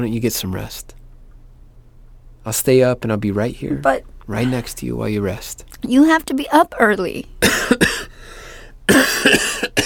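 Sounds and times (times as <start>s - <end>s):
speech: 0.0s - 1.0s, 2.4s - 9.8s
person coughing: 7.4s - 8.2s, 8.9s - 9.8s
wheezy breath: 8.1s - 8.8s.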